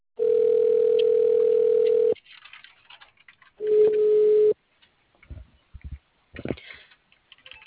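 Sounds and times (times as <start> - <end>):
telephone tone during a call transfer: 0.2 - 2.2, 3.6 - 4.6.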